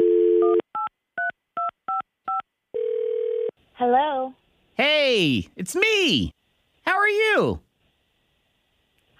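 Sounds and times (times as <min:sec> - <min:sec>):
steady telephone ringing tone: 0:00.0 - 0:00.9, 0:02.3 - 0:03.5
speech: 0:03.8 - 0:04.4, 0:05.0 - 0:06.4, 0:07.1 - 0:07.6.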